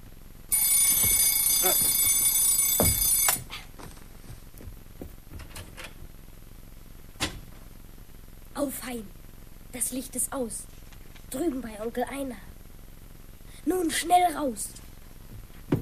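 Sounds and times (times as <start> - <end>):
loud electronic alarm clock ringing: 0.5 - 3.4
speech: 8.7 - 10.7, 11.3 - 12.5, 13.6 - 14.8.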